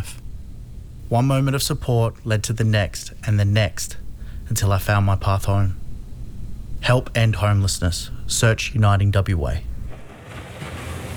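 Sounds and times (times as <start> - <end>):
speech: 1.1 - 5.8, 6.8 - 9.7
ocean waves off the coast at Albany: 10.0 - 11.1.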